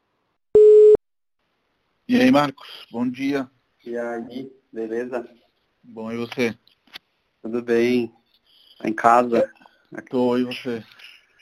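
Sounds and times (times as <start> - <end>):
telephone line tone while calling someone: 0.6 - 1.0
speech: 2.1 - 6.7, 7.4 - 8.2, 8.8 - 11.1.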